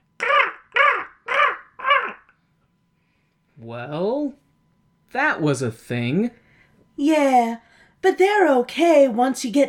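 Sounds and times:
crows cawing: 0.2s - 2.4s
speech: 3.6s - 4.4s, 5.1s - 6.4s, 7.0s - 9.6s.

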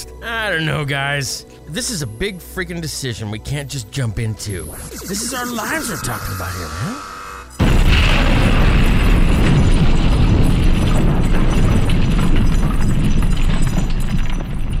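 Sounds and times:
speech: 0.2s - 7.1s
loud explosions with deep rumbling booms and crackling bursts: 7.6s - 14.7s.

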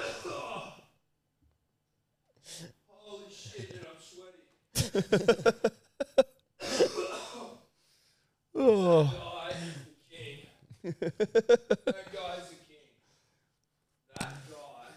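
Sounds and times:
loud coughing fit of harsh hacking coughs: 0.0s - 0.7s, 6.0s - 7.7s
laughter: 4.8s - 7.1s, 10.7s - 12.5s
speech: 4.9s - 5.8s, 11.0s - 11.6s.

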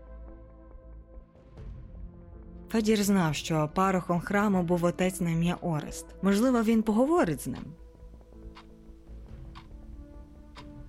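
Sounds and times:
speech: 2.7s - 7.8s
large wall clock ticking in a living room: 7.4s - 9.8s, 10.5s - 10.8s.

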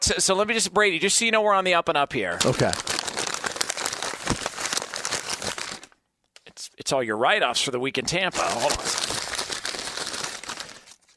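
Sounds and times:
speech: 0.1s - 2.9s, 6.9s - 9.2s
sheet of paper being handled and crinkled: 2.4s - 6.0s, 8.3s - 11.1s.

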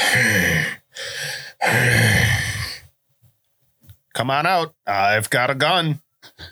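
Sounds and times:
voice imitating heavy labored breathing: 0.0s - 2.9s
speech: 4.2s - 6.5s.

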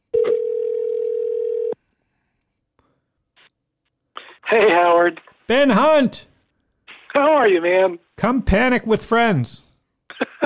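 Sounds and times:
telephone dial tone as a call is placed: 0.1s - 1.8s
speech: 4.5s - 6.3s, 7.4s - 9.7s.

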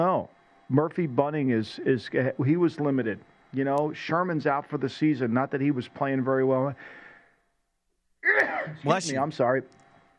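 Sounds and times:
speech: 0.0s - 7.0s, 8.2s - 9.8s
faint breathy intake: 6.8s - 7.4s
person sneezing: 8.2s - 9.2s.

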